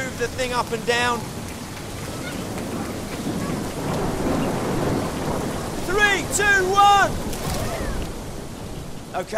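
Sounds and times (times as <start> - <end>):
crowd imitating a thunderstorm with rain-like patter: 0.0 - 8.3
speech: 0.2 - 1.4, 5.9 - 7.3, 9.2 - 9.3.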